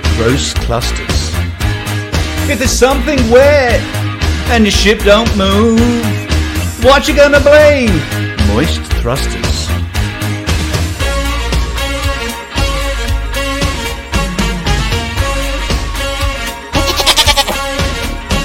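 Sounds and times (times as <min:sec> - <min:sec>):
dense steady musical backing: 0:00.0 - 0:18.4
speech: 0:00.2 - 0:01.5, 0:02.5 - 0:06.2, 0:06.8 - 0:09.8
goat bleating with a wavering quivering tone: 0:16.8 - 0:17.8.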